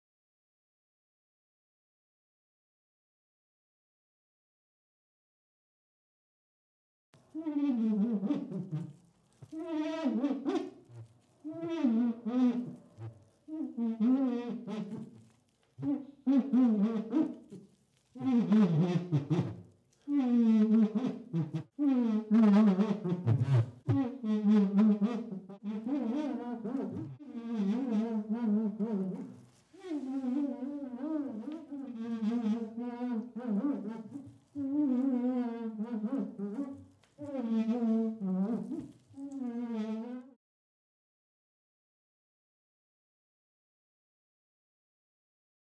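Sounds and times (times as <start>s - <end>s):
finger dragging on glass: 7.4s - 40.2s.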